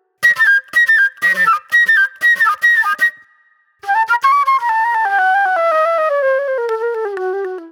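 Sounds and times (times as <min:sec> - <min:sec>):
soul flute music: 0:00.2 - 0:07.7.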